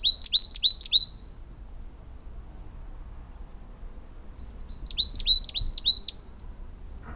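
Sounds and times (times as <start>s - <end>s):
coal tit calling: 0.0s - 1.2s, 4.3s - 7.0s.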